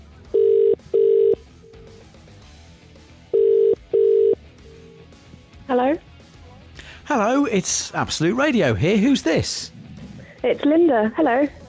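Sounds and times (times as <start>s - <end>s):
outgoing phone call ringing out: 0.3s - 1.5s, 3.3s - 4.4s
speech: 7.1s - 9.8s, 10.4s - 11.6s.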